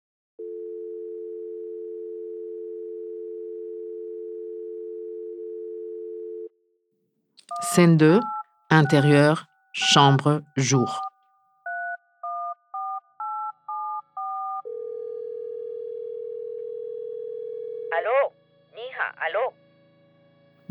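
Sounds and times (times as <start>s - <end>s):
automated calling-card menu voice: 7.5s - 11.0s, 18.0s - 18.3s
touch-tone phone keypad beeps: 7.5s - 11.0s
long unbroken phone-line tone: 7.5s - 11.1s, 12.4s - 17.8s
speech: 7.5s - 11.1s.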